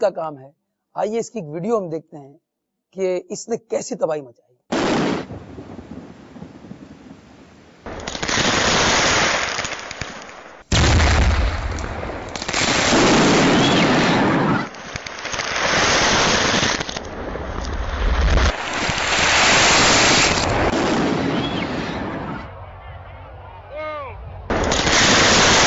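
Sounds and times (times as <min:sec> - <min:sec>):
speech: 0:00.0 - 0:05.1
stockpile of fireworks exploding in an accident at a fireworks store: 0:04.7 - 0:22.6, 0:24.4 - 0:25.6.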